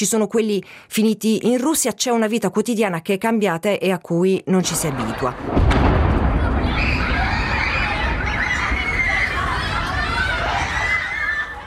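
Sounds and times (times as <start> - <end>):
speech: 0.0 - 6.0
boom-like rumble from an explosion in Kyiv: 5.3 - 10.8
schoolchildren screaming and shouting as they flee in panic: 6.2 - 11.6.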